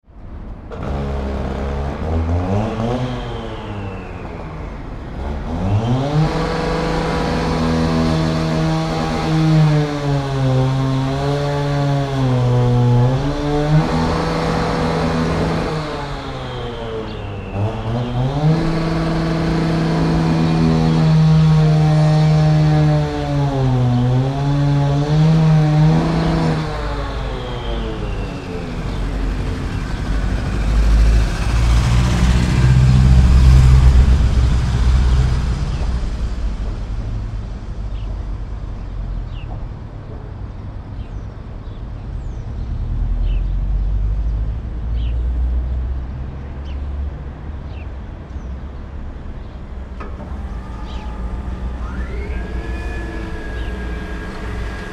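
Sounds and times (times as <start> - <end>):
traffic: 0.0 - 54.9
crane working on a building site: 0.1 - 41.6, 47.6 - 54.9
petrol cutter on a building site: 0.7 - 34.8, 49.9 - 54.9.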